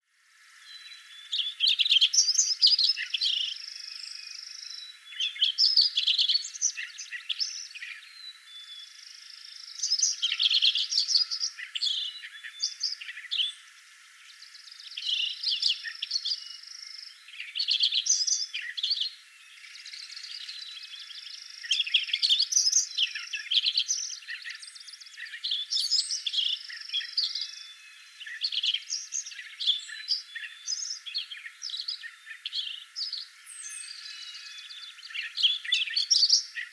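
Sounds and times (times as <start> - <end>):
Lincoln's sparrow singing: 0.7 - 36.7.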